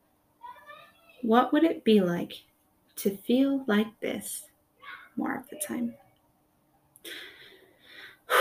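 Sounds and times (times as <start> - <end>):
speech: 1.2 - 4.5, 5.2 - 6.0
person breathing deeply: 7.0 - 8.3.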